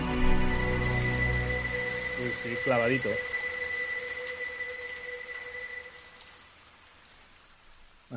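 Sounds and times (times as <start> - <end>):
steady rain: 0.0 - 8.1
speech: 2.2 - 3.3.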